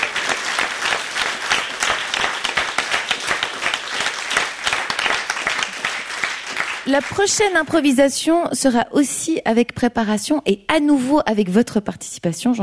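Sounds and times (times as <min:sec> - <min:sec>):
audience applause: 0:00.0 - 0:07.6
speech: 0:06.9 - 0:12.6.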